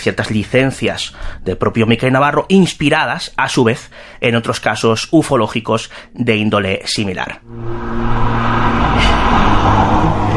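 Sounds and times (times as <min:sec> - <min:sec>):
speech: 0:00.0 - 0:09.1
car engine running as the car stops: 0:07.4 - 0:10.3
faint brief whoosh: 0:07.4 - 0:10.3.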